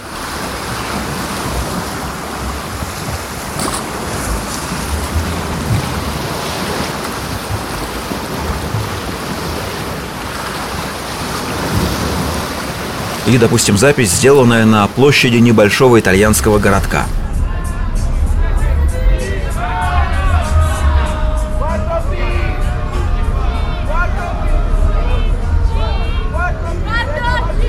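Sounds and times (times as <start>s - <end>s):
sea surf of waves washing in: 0.0s - 27.6s
speech: 13.3s - 17.2s.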